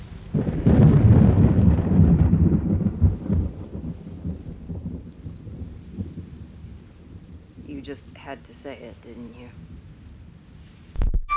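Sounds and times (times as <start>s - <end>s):
loud rumble of thunder: 0.0s - 8.6s
heavy rain falling: 0.0s - 11.2s
speech: 7.9s - 9.8s.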